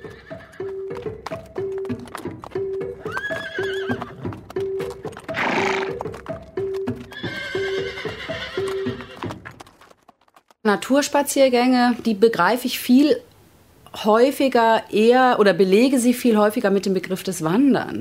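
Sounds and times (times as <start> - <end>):
horses neighing and whinnying: 0.0 - 0.9, 3.0 - 4.4, 5.2 - 6.2, 7.0 - 9.4
steady clip-clop of horse hooves: 0.0 - 10.6
horse breathy snort: 5.2 - 6.1
speech: 10.7 - 13.3, 14.0 - 18.0.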